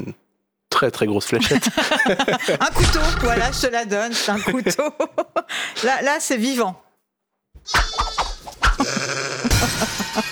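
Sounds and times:
speech: 0:00.0 - 0:00.2, 0:00.8 - 0:06.8, 0:07.6 - 0:08.0
laughter: 0:01.4 - 0:05.6, 0:07.8 - 0:10.3
sheep bleating: 0:02.8 - 0:03.7, 0:07.7 - 0:09.6.

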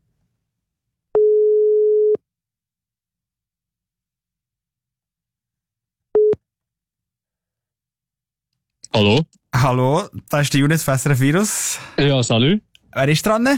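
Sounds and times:
telephone ringback tone while calling a ticket-contest winner: 0:01.2 - 0:02.2
speech: 0:09.0 - 0:13.5.

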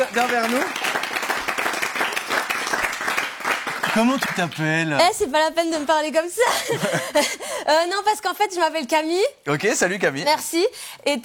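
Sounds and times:
small group at a table applauding: 0:00.0 - 0:05.2
speech: 0:00.2 - 0:01.1, 0:04.0 - 0:11.2
laughter: 0:06.4 - 0:07.6.

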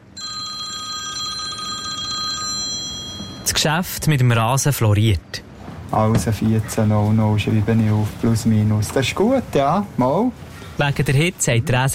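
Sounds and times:
telephone of a turf grass producer in Switzerland ringing with electronic trill: 0:00.0 - 0:03.5
speech: 0:03.5 - 0:11.9.

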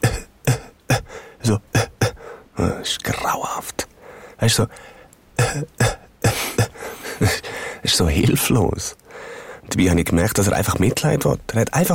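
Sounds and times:
voice imitating a man's quiet persistent cough: 0:00.0 - 0:01.1, 0:05.4 - 0:07.4
speech: 0:01.5 - 0:01.7, 0:02.6 - 0:06.0, 0:07.2 - 0:11.9.

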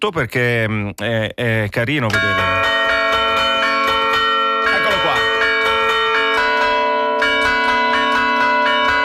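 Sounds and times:
speech: 0:00.0 - 0:02.8
church bells pealing, rung by electronic controls: 0:02.1 - 0:09.0.

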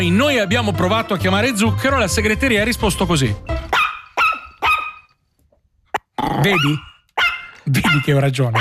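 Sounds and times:
speech: 0:00.0 - 0:03.5, 0:06.4 - 0:06.9, 0:07.7 - 0:08.5
small dog barking: 0:03.7 - 0:05.1, 0:06.5 - 0:08.5.

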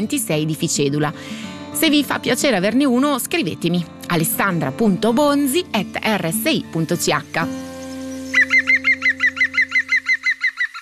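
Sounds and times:
speech: 0:00.0 - 0:07.7
green woodpecker laughing call: 0:07.8 - 0:10.8.

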